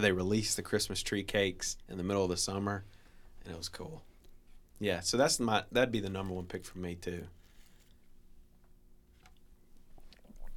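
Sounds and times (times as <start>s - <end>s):
speech: 0.0s - 4.1s, 4.8s - 7.4s
low hum: 0.0s - 10.5s
sipping eggnog from a cup: 9.1s - 10.5s.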